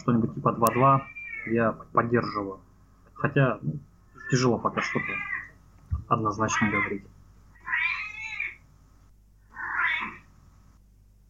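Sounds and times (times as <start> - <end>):
speech: 0.0 - 5.3, 6.1 - 7.1
faint low hum: 0.0 - 11.2
cat meowing: 0.7 - 1.6, 4.2 - 5.6, 7.6 - 8.6, 9.5 - 10.3.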